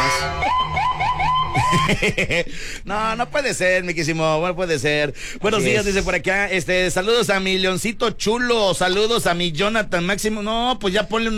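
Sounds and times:
police car siren wailing: 0.0 - 2.0
laughter: 0.8 - 2.6
speech: 1.8 - 11.3.

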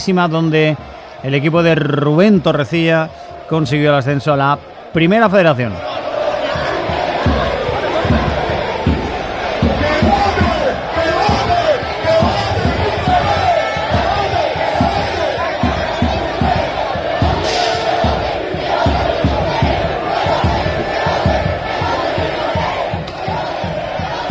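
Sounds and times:
speech: 0.0 - 6.0
large crowd of football fans chanting outdoors at a stadium gate: 0.0 - 24.2
rhythmic thumps like drumbeats or clapping: 5.8 - 24.2.

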